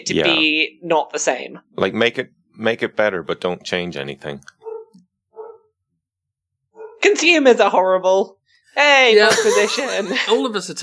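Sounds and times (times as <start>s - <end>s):
speech: 0.0s - 4.6s, 7.0s - 10.8s
single dog bark: 4.6s - 5.7s
laughter: 9.2s - 10.5s.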